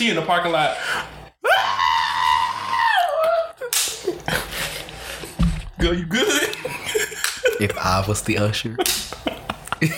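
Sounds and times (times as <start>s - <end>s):
speech: 0.0s - 1.2s, 5.8s - 6.8s, 7.6s - 9.9s
voice imitating a woman's scream in a Baptist church: 1.4s - 3.7s.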